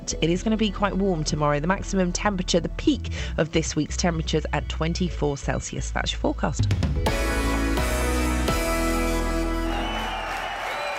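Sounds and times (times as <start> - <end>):
speech: 0.1 - 7.2
loud amplified live music from a festival main stage: 7.0 - 10.9
festival crowd noise: 9.2 - 10.9.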